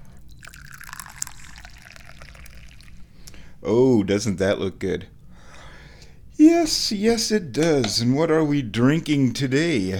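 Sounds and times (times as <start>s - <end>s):
tea being poured into a cup: 0.2s - 3.1s
speech: 3.6s - 5.2s, 6.4s - 9.9s.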